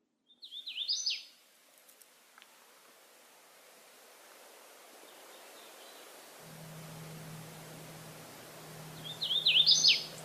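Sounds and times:
hooded warbler singing whistled phrases: 0.3 - 1.3, 5.1 - 10.2
faint low hum: 6.3 - 10.2.

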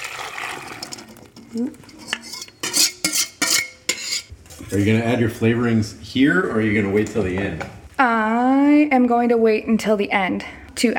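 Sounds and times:
ladling and stirring an egg and milk mixture in a warm pan: 0.4 - 4.8
utensil clinking and clattering against the pan: 0.8 - 4.3
speech: 1.5 - 2.0, 4.7 - 10.9.

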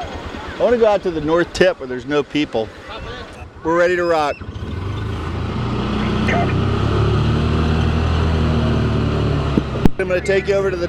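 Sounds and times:
speech: 0.6 - 4.5, 10.1 - 10.8
lifeguard dune patrol car engine driving on beach sand: 3.2 - 10.8.

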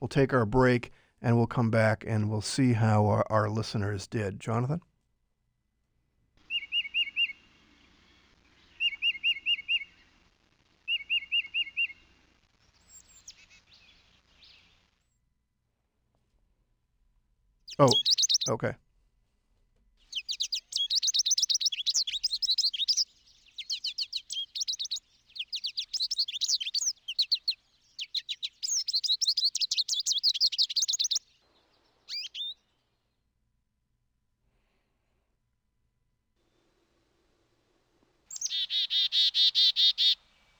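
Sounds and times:
speech: 0.0 - 4.9, 17.8 - 18.9
birds chirping and trilling: 6.5 - 10.1, 17.7 - 18.8, 20.1 - 32.9, 38.3 - 40.5.

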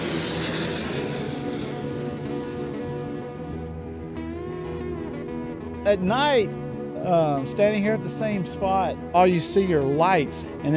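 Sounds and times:
small propeller plane flying overhead high up: 0.0 - 10.7
speech: 5.9 - 10.7.

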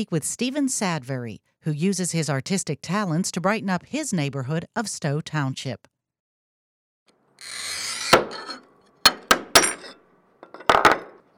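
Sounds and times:
speech: 0.0 - 5.9
glass cutter scoring glass in a studio in a parking garage: 7.4 - 10.6
glass being struck and snapped in a studio in a parking garage: 9.1 - 11.3.

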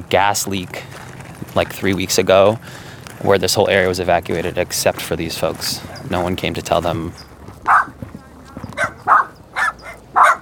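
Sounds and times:
speech: 0.1 - 7.3
dogs yapping and barking: 5.8 - 6.2, 7.1 - 10.3.

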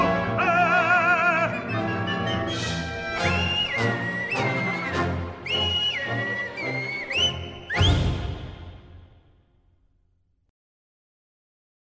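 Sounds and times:
vibrato-laden sung phrase in an opera aria: 0.0 - 1.8
full orchestra playing an opera aria: 0.0 - 9.2
man whistling in an opera aria: 1.0 - 8.6.

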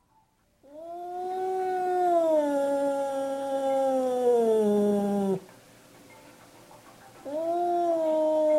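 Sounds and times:
cat caterwauling at visiting cat through glass: 0.7 - 5.5, 7.3 - 8.5.

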